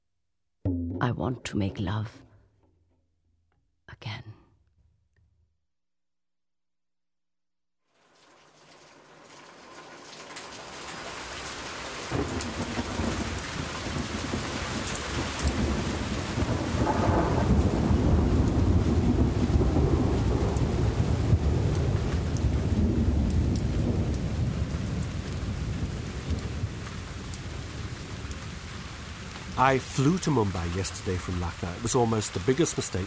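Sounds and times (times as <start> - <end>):
speech: 1.0 - 2.3, 29.6 - 33.0
steady rain pouring down: 7.9 - 33.0
long deep roll of thunder: 12.1 - 33.0.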